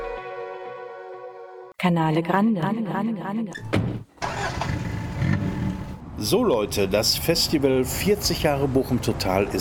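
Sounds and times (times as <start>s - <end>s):
speech: 1.8s - 4.1s, 6.2s - 9.6s
car engine droning inside the vehicle while driving: 4.2s - 8.0s
road noise: 4.2s - 9.6s.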